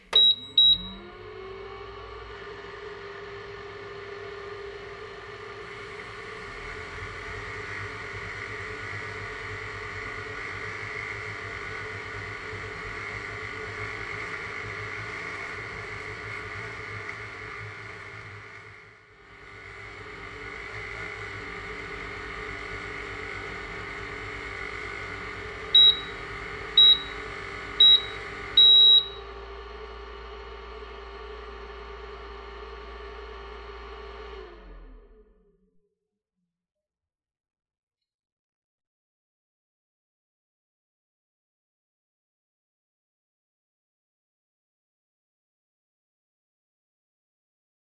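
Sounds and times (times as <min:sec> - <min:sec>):
milk frother: 0:00.1 - 0:34.8.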